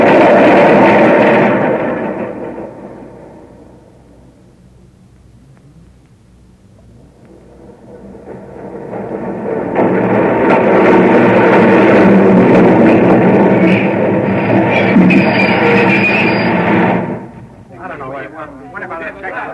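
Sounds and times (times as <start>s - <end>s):
subway train roaring along: 0.0s - 19.5s
faint high squeal: 14.5s - 17.1s.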